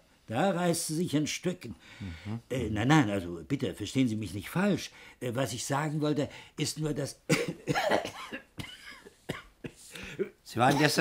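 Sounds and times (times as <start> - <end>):
speech: 0.3 - 7.9, 10.5 - 10.9
person with a bad cough coughing: 7.3 - 10.9.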